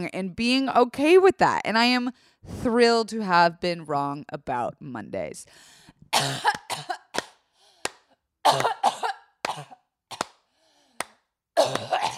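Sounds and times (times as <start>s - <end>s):
speech: 0.0s - 7.0s, 8.4s - 8.8s
person coughing after inhaling dust off a microphone: 6.2s - 7.2s, 8.4s - 10.3s, 11.6s - 12.1s.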